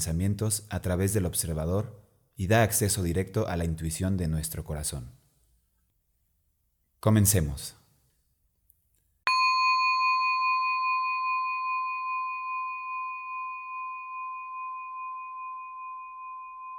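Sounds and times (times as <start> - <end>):
speech: 0.0 - 5.2, 7.0 - 7.8
single meditation bell struck and ringing: 9.3 - 16.7.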